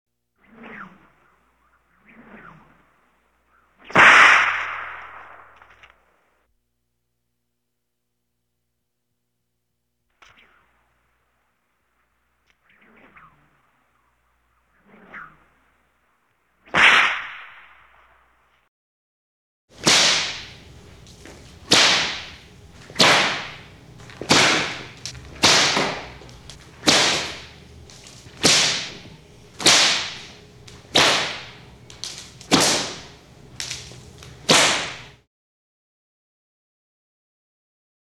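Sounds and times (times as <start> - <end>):
whip whipping: 3.9 - 5.9, 16.8 - 17.4, 19.8 - 35.2.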